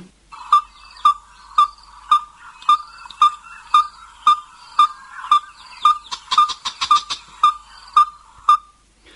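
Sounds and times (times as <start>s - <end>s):
Yellow-fronted tinkerbird calling clear ringing notes: 0.3s - 8.8s.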